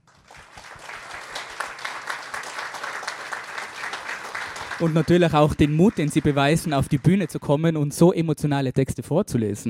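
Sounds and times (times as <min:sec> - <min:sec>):
crowd applauding young people who read texts on stage: 0:00.0 - 0:07.5
speech: 0:04.8 - 0:09.6.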